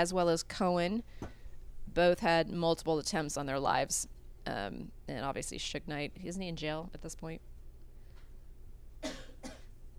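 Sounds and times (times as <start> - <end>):
speech: 0.0 - 7.5
low steady hum: 0.0 - 9.9
person coughing: 9.0 - 9.7.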